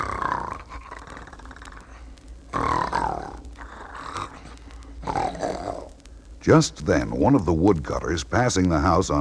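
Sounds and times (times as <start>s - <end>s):
loud rasping snoring: 0.0s - 5.9s
speech: 6.4s - 9.1s.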